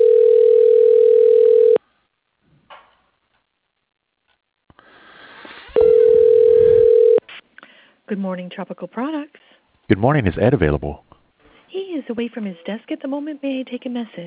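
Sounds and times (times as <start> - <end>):
telephone tones from a phone system dialing an extension: 0.0 - 1.8, 5.8 - 7.2
speech: 8.2 - 11.1, 12.0 - 14.2.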